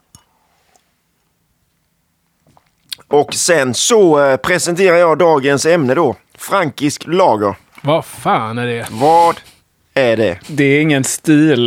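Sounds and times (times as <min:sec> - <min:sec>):
person sipping water: 0:02.4 - 0:03.1
soft wet mouth clicks and gulps: 0:02.4 - 0:03.1
speech: 0:03.1 - 0:11.6.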